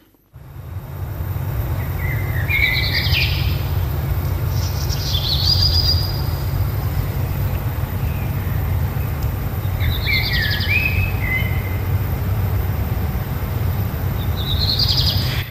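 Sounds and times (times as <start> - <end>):
steady low rumble: 0.3 - 15.5
blackbird singing: 1.6 - 12.2, 14.0 - 15.5.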